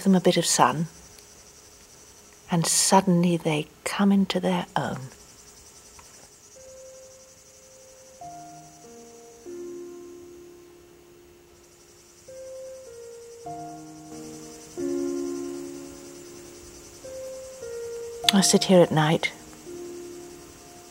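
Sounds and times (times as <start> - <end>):
speech: 0.0 - 1.0, 2.5 - 5.2, 18.3 - 19.4
crickets chirping at night: 0.0 - 20.8
slow melody of sustained low notes: 6.6 - 20.8.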